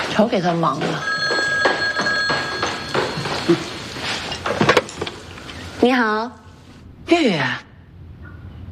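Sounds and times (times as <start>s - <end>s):
speech: 0.2s - 1.1s, 3.5s - 3.7s, 5.8s - 6.4s, 7.1s - 7.6s
telephone ringing indoors with an electronic tone: 0.8s - 5.9s.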